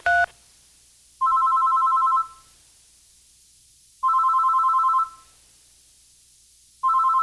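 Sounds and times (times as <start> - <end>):
telephone ringing with electronic two-tone bursts: 0.0 - 0.3, 1.2 - 2.4, 4.0 - 5.2, 6.8 - 7.2.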